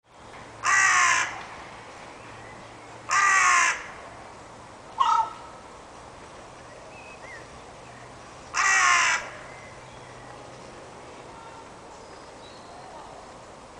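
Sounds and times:
carrion crow Corvus corone giving harsh rasping caws: 0.6 - 1.4, 3.1 - 4.0, 5.0 - 5.5, 8.5 - 9.4.

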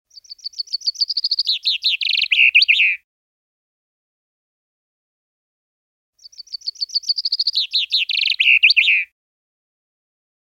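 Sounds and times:
common chaffinch Fringilla coelebs song: 0.1 - 3.0, 6.2 - 9.2.

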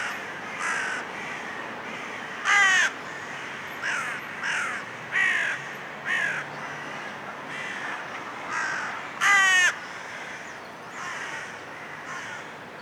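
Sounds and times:
carrion crow cawing: 0.0 - 12.5.

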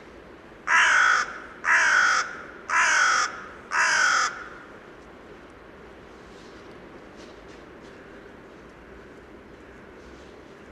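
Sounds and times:
carrion crow Corvus corone giving drawn-out raspy caws: 0.7 - 4.7.

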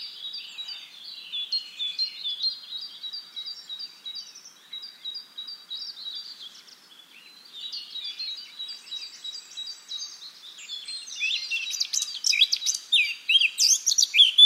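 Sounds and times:
Sylvia atricapilla Eurasian blackcap singing scratchy and fluty warble: 0.0 - 14.4.

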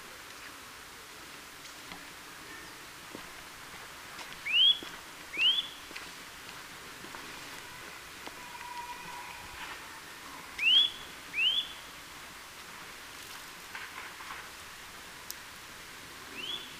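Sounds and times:
Eurasian nuthatch Sitta europaea calling in bright rising whistles: 4.4 - 5.8, 10.6 - 11.9, 16.4 - 16.7
soft low whistle: 4.4 - 5.8, 10.6 - 11.8.

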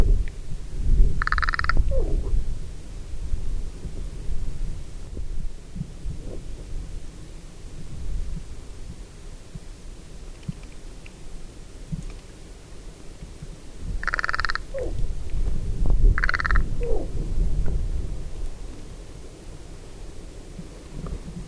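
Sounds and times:
constant low rumbling noise: 0.0 - 9.0, 14.6 - 21.4
Carrion crow Corvus corone giving harsh calls: 1.2 - 2.1, 14.0 - 15.0, 16.2 - 17.1.

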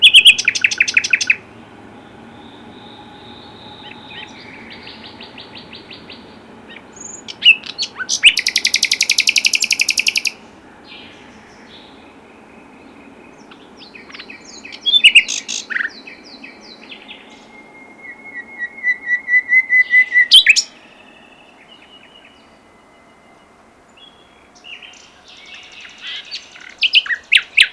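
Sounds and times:
common nightingale singing: 0.0 - 27.7.

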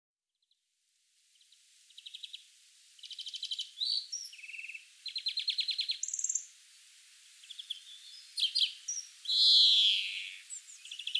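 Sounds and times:
European greenfinch Chloris chloris trills and wheezing buzz: 1.4 - 6.5, 7.4 - 11.1.

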